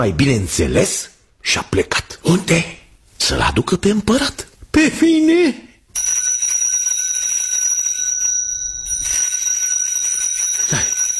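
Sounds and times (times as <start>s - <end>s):
speech: 0.0s - 6.2s
small hand bell ringing: 5.9s - 11.1s.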